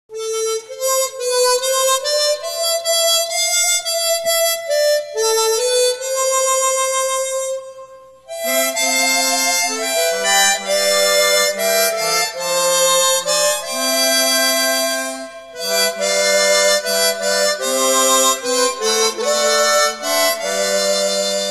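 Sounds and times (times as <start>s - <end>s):
chromatic harmonica playing hymns: 0.1s - 21.5s.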